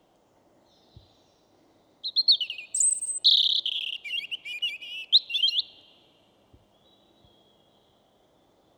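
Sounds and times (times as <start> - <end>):
European robin song with whistles and trilled notes: 2.0 - 6.0, 6.7 - 8.0.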